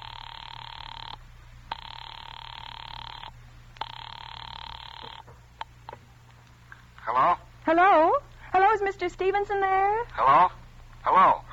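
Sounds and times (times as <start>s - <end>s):
electronic telephone ring tone heard down the line while calling an office: 0.0s - 6.0s
speech: 7.2s - 8.2s, 8.9s - 11.4s.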